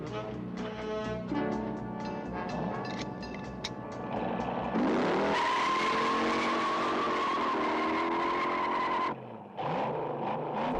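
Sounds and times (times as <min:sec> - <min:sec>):
car engine roaring: 0:00.0 - 0:10.7
car tires squealing burning rubber on San Francisco streets: 0:04.8 - 0:10.7.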